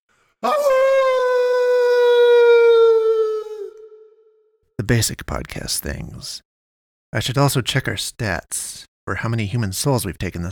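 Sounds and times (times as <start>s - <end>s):
speech: 0.4s - 0.7s, 4.9s - 6.5s, 7.1s - 10.5s
human voice imitating a wolf howl: 0.4s - 4.3s.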